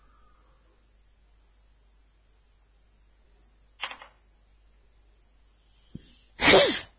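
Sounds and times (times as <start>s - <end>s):
sneeze: 6.4s - 6.9s.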